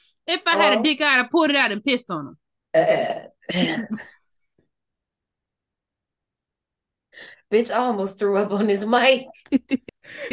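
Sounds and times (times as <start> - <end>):
speech: 0.3 - 4.2, 7.2 - 10.3
loud raspy burp: 2.7 - 3.9.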